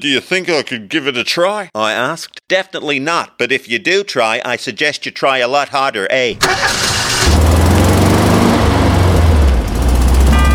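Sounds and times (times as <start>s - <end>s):
speech: 0.0s - 7.6s
van engine revving loudly: 6.4s - 10.5s.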